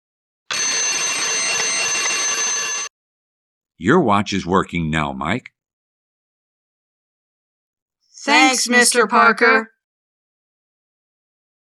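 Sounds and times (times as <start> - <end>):
alarm clock bell ringing: 0.5 - 2.9
speech: 3.8 - 5.6, 8.2 - 9.7.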